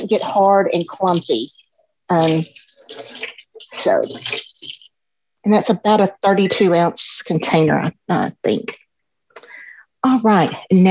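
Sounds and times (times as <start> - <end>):
water running from tap while washing hands: 0.0 - 4.9
speech: 0.1 - 4.5, 5.5 - 8.8, 10.0 - 10.8.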